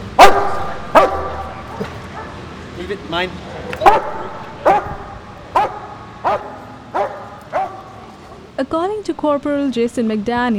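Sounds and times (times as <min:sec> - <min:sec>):
police dog barking: 0:00.2 - 0:02.4, 0:03.6 - 0:08.1
speech: 0:02.9 - 0:04.2, 0:08.6 - 0:10.5.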